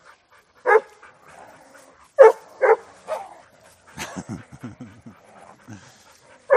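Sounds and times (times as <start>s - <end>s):
dog barking: 0.7s - 0.9s, 2.2s - 3.3s
laughter: 3.9s - 6.0s
speech: 4.2s - 6.0s.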